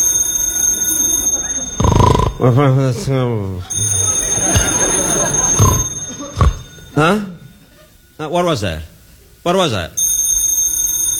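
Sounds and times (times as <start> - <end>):
telephone ringing in a house: 0.0 - 3.0, 3.6 - 9.1, 10.0 - 11.1
speech: 2.4 - 3.7, 7.0 - 7.3, 8.2 - 10.0
laughter: 2.4 - 8.0.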